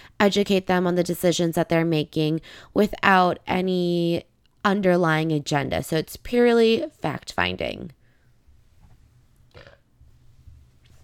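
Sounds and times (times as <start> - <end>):
speech: 0.2 - 8.0
short throaty burp: 9.5 - 9.8.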